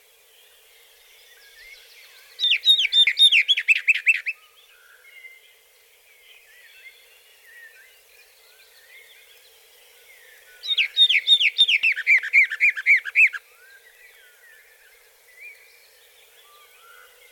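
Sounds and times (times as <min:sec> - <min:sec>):
Western Orphean warbler song: 0:00.0 - 0:17.3
faint background birds: 0:00.0 - 0:17.3.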